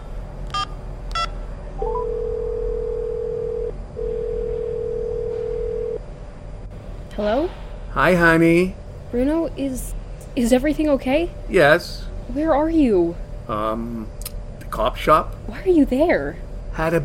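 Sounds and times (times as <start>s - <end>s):
long steady telephone line tone: 0.5s - 6.0s
speech: 7.2s - 14.2s, 14.7s - 17.0s.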